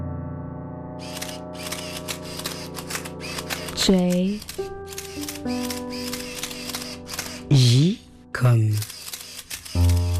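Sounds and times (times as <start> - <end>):
photographer's camera shutter clicking: 1.0 - 7.5, 8.7 - 10.1
speech: 3.9 - 5.9, 8.4 - 8.9.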